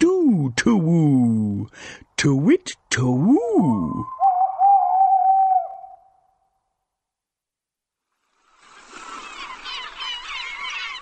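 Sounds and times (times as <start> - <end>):
speech: 0.0 - 4.1
seagull calls and squawks: 4.0 - 6.0, 9.2 - 10.9.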